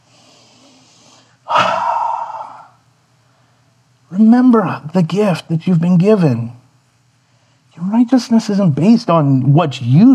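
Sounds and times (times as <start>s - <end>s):
deep breath: 0.0s - 3.8s, 7.2s - 7.7s
speech: 4.1s - 6.6s, 8.1s - 10.1s.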